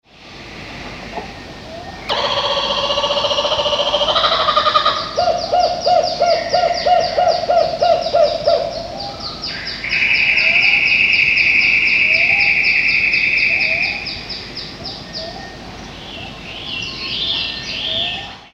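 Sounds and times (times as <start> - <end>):
dawn chorus: 0.2 - 18.5.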